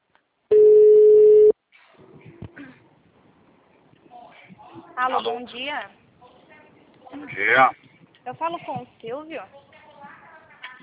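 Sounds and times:
telephone ringing for an incoming call: 0.5 - 1.5
speech: 5.0 - 6.0, 7.2 - 9.7.

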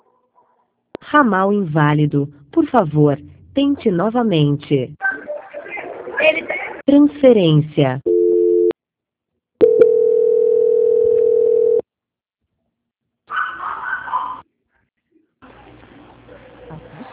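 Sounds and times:
speech: 1.1 - 5.0, 6.9 - 8.1
long steady telephone tone: 8.1 - 8.7, 9.6 - 11.8
neighbor's dog barking: 13.3 - 14.4.

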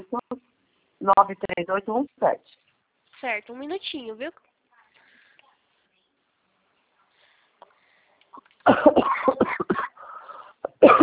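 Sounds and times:
speech: 1.1 - 2.6, 3.2 - 4.5, 8.6 - 9.6
person coughing harshly in quick bursts: 8.6 - 11.0.

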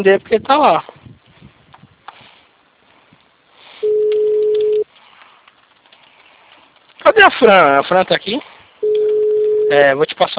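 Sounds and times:
speech: 0.0 - 0.9, 7.1 - 8.6, 9.7 - 10.3
telephone ringback tone on an unanswered phone call: 3.8 - 4.8, 8.8 - 9.8.

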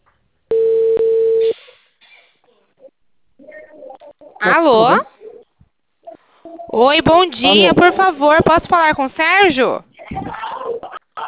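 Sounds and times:
telephone ringing tone on the line: 0.5 - 1.5
speech: 4.4 - 5.1, 6.8 - 10.2.

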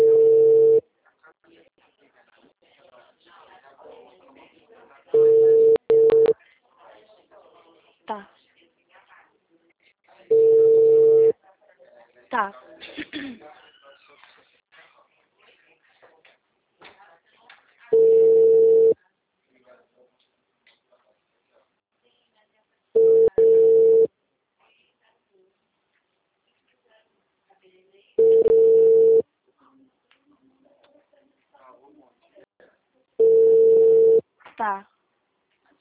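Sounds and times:
telephone tones while redialing a dropped call: 0.0 - 0.8, 5.2 - 6.3, 10.3 - 11.3, 17.9 - 19.0, 23.0 - 24.1, 28.2 - 29.2, 33.2 - 34.2.

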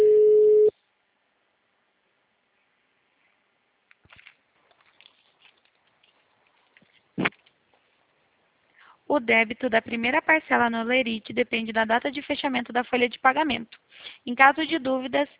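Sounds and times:
telephone ringing tone as a call is placed: 0.0 - 0.7
brief thump: 7.2 - 7.4
speech: 9.1 - 15.3.

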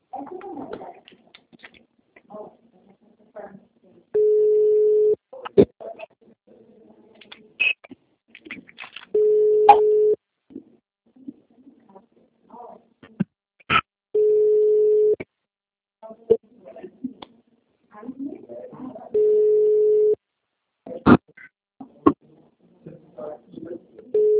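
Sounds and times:
faint scattered small noises: 0.0 - 15.4, 16.0 - 24.3
telephone call tone beeps: 4.2 - 5.2, 9.2 - 10.2, 14.2 - 15.2, 19.2 - 20.2, 24.2 - 24.3.

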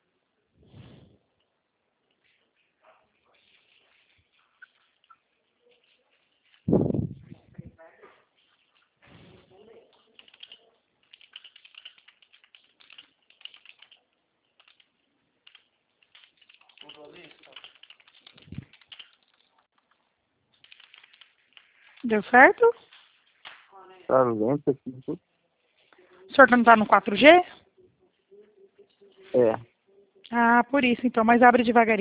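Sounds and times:
keyboard typing: 10.0 - 20.0, 20.6 - 21.8
speech: 22.1 - 22.9, 24.1 - 25.3, 26.4 - 27.5, 30.6 - 31.9.

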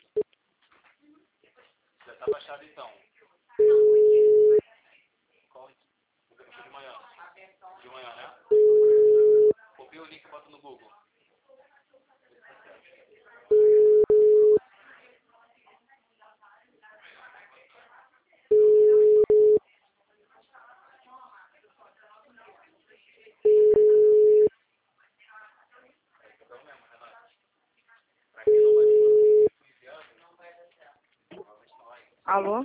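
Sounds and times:
speech: 2.2 - 3.1, 10.0 - 11.1, 32.3 - 32.6
telephone busy tone beeps after a dropped call: 3.6 - 4.6, 8.5 - 9.5, 13.5 - 14.6, 18.5 - 19.6, 23.5 - 24.5, 28.5 - 29.5.

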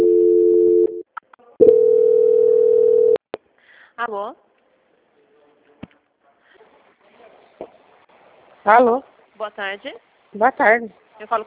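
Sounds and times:
steady low electronic telephone tone during a call transfer: 0.0 - 1.0, 1.6 - 3.2
speech: 4.0 - 4.5, 8.6 - 11.4.

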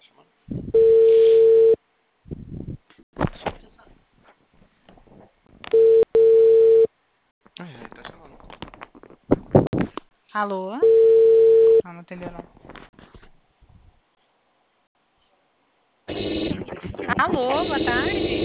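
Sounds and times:
ringback tone of an outgoing telephone call: 0.8 - 1.8, 5.7 - 6.9, 10.8 - 11.8
speech: 10.4 - 10.9, 11.9 - 12.6, 17.4 - 18.3.

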